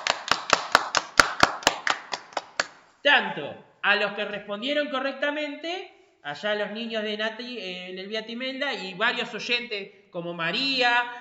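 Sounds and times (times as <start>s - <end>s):
applause for children's correct answers to a riddle: 0.0s - 2.8s
speech: 3.0s - 11.1s.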